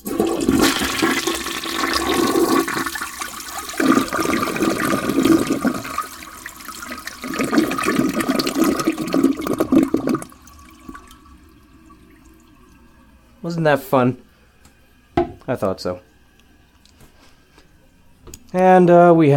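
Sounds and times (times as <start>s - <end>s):
toilet cistern refill trickle: 0.0s - 13.4s
toilet flushing: 0.0s - 16.7s
speech: 13.6s - 14.2s, 15.5s - 16.1s, 18.5s - 19.3s.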